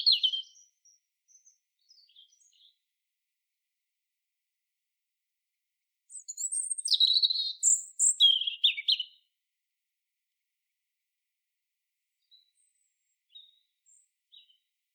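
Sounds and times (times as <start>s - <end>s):
European robin Erithacus rubecula song: 0.0s - 2.8s, 6.1s - 9.3s, 12.2s - 14.7s.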